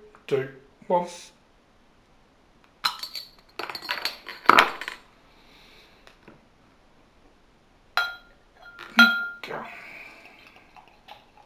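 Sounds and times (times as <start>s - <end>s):
speech: 0.3s - 1.4s
beer bottle uncapped with a bottle opener: 2.9s - 4.6s, 8.0s - 9.4s.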